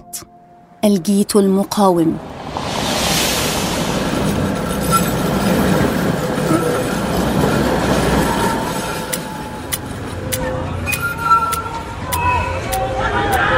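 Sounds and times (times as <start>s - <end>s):
speech: 0.1s - 2.3s
train or tram rumbling along rails: 1.9s - 13.4s
faint metallic squeals: 2.8s - 13.0s.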